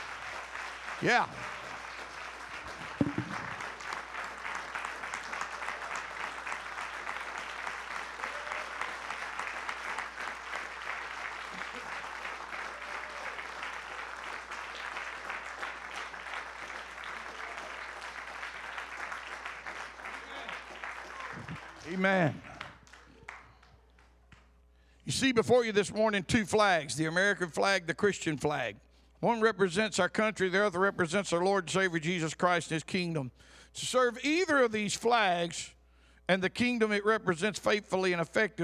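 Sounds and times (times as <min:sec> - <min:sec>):
church audience applauding: 0:00.0 - 0:23.8
speech: 0:01.0 - 0:01.6, 0:25.2 - 0:38.6.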